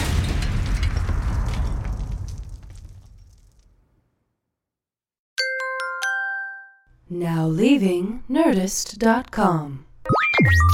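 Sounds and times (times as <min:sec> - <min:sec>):
loud booming explosion: 0:00.0 - 0:04.1
speech: 0:07.1 - 0:10.7.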